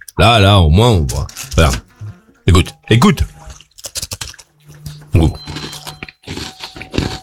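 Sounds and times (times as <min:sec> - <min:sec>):
speech: 0:00.2 - 0:01.9, 0:02.5 - 0:03.3, 0:05.2 - 0:05.5
crunchy chewing of a small cake: 0:03.5 - 0:07.2.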